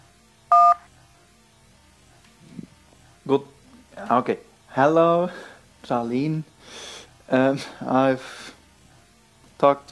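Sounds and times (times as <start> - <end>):
telephone keypad button press tone in a voicemail menu: 0.5 - 0.8
speech: 3.3 - 8.5, 9.6 - 9.9.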